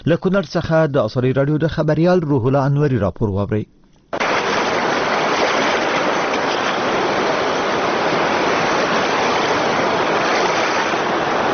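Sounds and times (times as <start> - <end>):
speech: 0.0 - 3.8
flooded Kunar river water rushing: 4.2 - 11.5.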